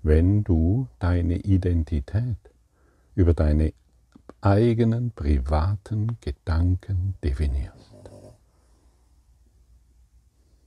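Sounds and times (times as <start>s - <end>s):
faint low hum: 0.0s - 10.6s
speech: 0.1s - 2.5s, 3.2s - 7.9s
dog snorting or grunting: 7.4s - 8.4s.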